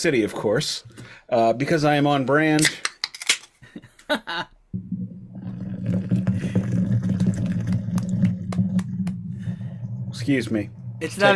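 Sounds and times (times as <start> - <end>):
speech: 0.0 - 2.9, 3.8 - 5.0, 10.3 - 11.3
laughter: 3.8 - 4.5
beer pouring into a glass: 4.8 - 11.3.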